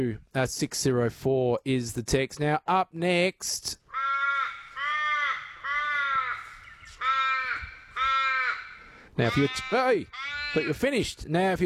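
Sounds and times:
speech: 0:00.0 - 0:03.8, 0:09.2 - 0:11.6
Australian raven cawing: 0:03.9 - 0:10.9.

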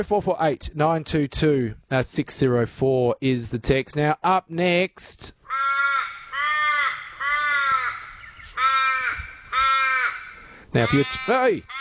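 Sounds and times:
speech: 0:00.0 - 0:05.4, 0:10.8 - 0:11.7
Australian raven cawing: 0:05.4 - 0:11.7.

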